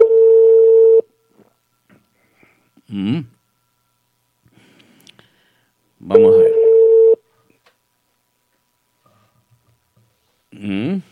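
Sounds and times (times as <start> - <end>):
telephone tone on an outgoing call: 0.0 - 1.1, 6.1 - 7.2
speech: 2.9 - 3.4, 6.0 - 6.6.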